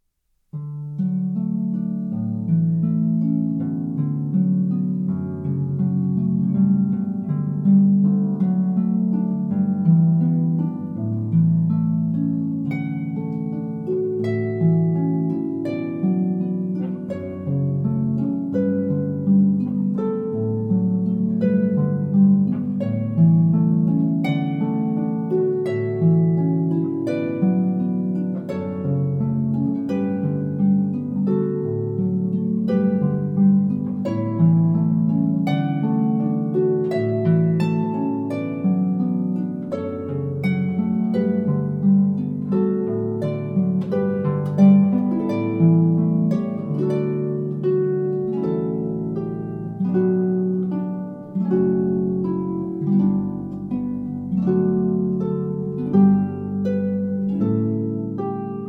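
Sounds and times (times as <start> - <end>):
solo harp piece: 0.0 - 58.6.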